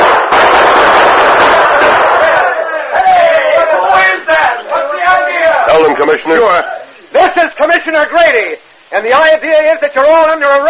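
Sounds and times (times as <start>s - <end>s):
gunfire in a shootout near a gulch: 0.0s - 4.8s
people shouting: 1.3s - 7.0s
speech: 6.1s - 10.6s.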